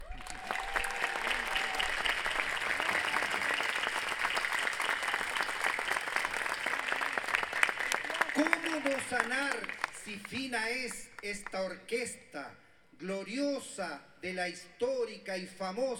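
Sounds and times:
audience applause for a choir at a concert: 0:00.0 - 0:11.2
speech: 0:08.8 - 0:15.9.

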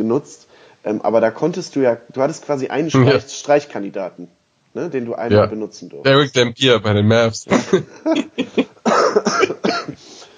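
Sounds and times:
speech: 0:00.0 - 0:09.5
laughter: 0:03.0 - 0:03.2, 0:06.2 - 0:10.0
person coughing harshly: 0:03.0 - 0:03.2, 0:08.4 - 0:10.2.

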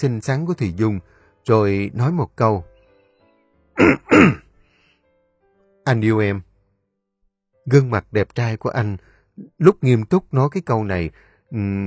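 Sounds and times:
speech: 0:00.0 - 0:02.7, 0:03.8 - 0:04.4, 0:05.8 - 0:06.5, 0:07.7 - 0:11.8
man clearing his throat: 0:03.8 - 0:04.4.

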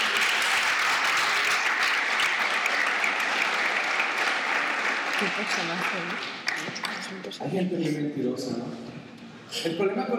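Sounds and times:
church congregation applauding during a sermon: 0:00.0 - 0:07.4
speech: 0:05.2 - 0:10.1.

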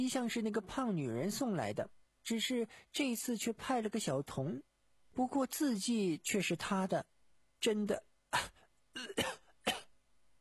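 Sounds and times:
speech: 0:00.0 - 0:09.2
harsh hacking coughs in a violent coughing fit: 0:08.4 - 0:10.0.

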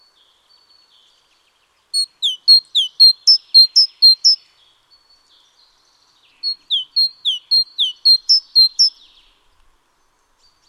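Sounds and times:
great tit Parus major major whistled notes: 0:02.0 - 0:05.3, 0:06.4 - 0:09.2.

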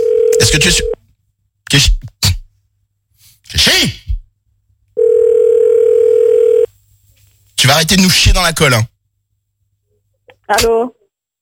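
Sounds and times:
telephone dial tone while calling a number: 0:00.0 - 0:00.4, 0:05.0 - 0:06.7
speech: 0:00.5 - 0:00.9, 0:01.7 - 0:02.1, 0:07.6 - 0:08.9, 0:10.5 - 0:11.0.

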